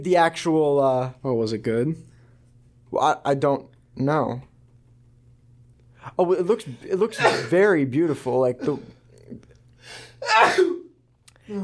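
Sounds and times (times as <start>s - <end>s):
speech: 0.0s - 2.1s, 2.9s - 4.5s, 6.1s - 10.7s, 11.5s - 11.6s
person sneezing: 7.2s - 7.6s, 9.9s - 10.9s.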